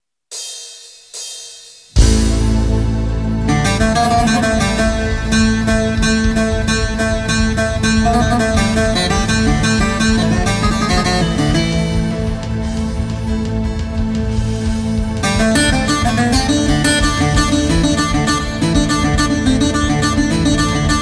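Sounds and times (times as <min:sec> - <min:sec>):
Greek bouzouki playing: 0:02.0 - 0:14.4, 0:15.0 - 0:21.0.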